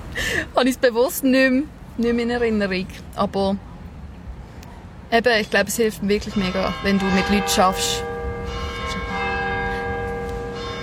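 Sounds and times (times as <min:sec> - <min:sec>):
speech: 0:00.2 - 0:03.7, 0:05.1 - 0:08.1
church bells ringing in a peal: 0:06.2 - 0:10.8.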